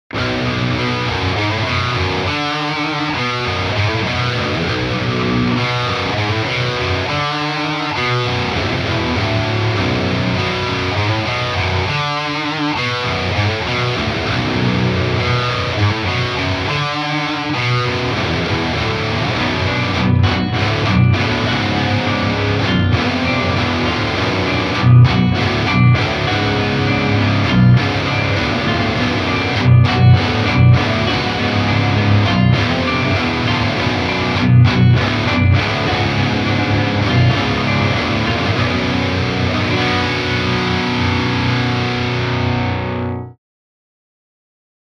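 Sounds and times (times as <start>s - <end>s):
lead guitar in clean mode: 0.1s - 43.4s.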